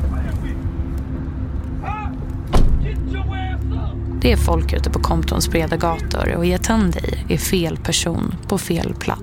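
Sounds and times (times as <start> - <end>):
car engine rumbling while parking: 0.0 - 9.2
solid thud: 2.5 - 3.0
speech: 4.2 - 9.2.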